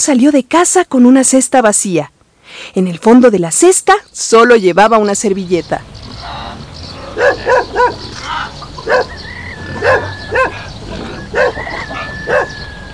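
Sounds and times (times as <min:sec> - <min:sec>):
speech: 0:00.0 - 0:06.4, 0:07.2 - 0:09.2
dog barking: 0:07.1 - 0:12.6.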